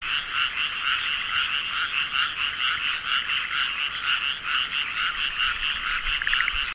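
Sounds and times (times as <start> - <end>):
frog calling: 0.0 - 6.7.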